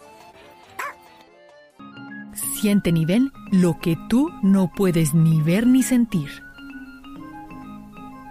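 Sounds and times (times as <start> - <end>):
dog barking: 0.8 - 1.0
steady tonal background: 2.4 - 8.2
speech: 2.6 - 6.4.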